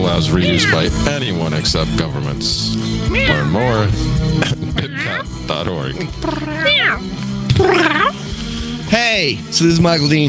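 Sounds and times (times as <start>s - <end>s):
speech: 0.2s - 8.2s, 8.9s - 10.2s
people imitating a cat meowing: 0.3s - 1.0s, 3.0s - 3.9s, 4.6s - 5.4s, 6.1s - 8.2s.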